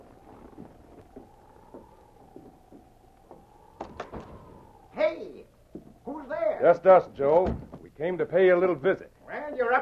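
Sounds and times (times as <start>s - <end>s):
door creaking open: 0.3s - 4.7s
speech: 6.6s - 9.8s.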